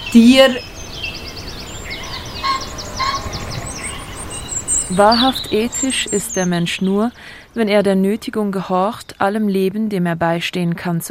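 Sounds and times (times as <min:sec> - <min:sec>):
speech: 0:00.1 - 0:00.7, 0:04.9 - 0:11.0
crowd of poultry clucking and gobbling: 0:01.0 - 0:06.3.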